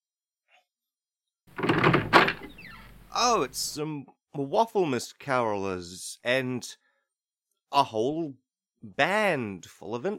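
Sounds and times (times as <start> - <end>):
door thump as it swings: 1.5 - 2.6
door opening with rattling scraping creak: 1.5 - 3.0
speech: 3.2 - 6.8, 7.7 - 10.1.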